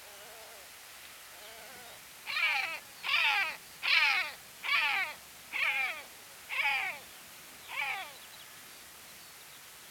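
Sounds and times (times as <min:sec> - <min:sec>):
great black-backed gull Larus marinus calling: 0:01.4 - 0:07.0, 0:07.7 - 0:08.2.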